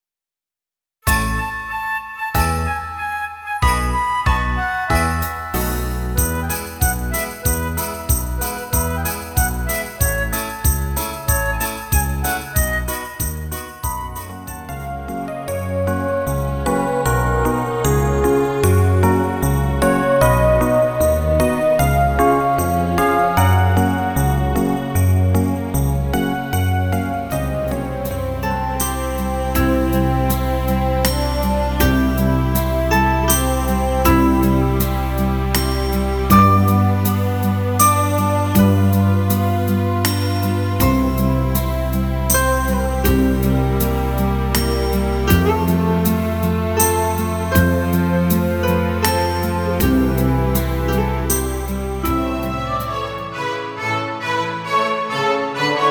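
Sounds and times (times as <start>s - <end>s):
Christmas background music: 1.1s - 55.8s.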